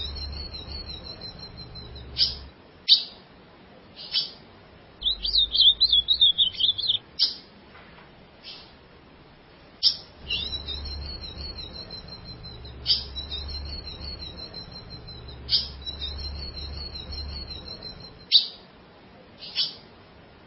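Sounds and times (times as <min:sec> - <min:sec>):
ultramarine grosbeak singing a warbling phrase: 0:00.0 - 0:03.2, 0:05.0 - 0:07.5, 0:09.8 - 0:18.6.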